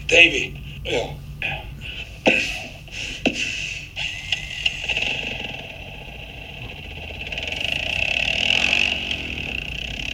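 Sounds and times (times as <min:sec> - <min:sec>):
speech: 0:00.1 - 0:03.4
small all-terrain vehicle engine idling and revving: 0:03.2 - 0:10.1.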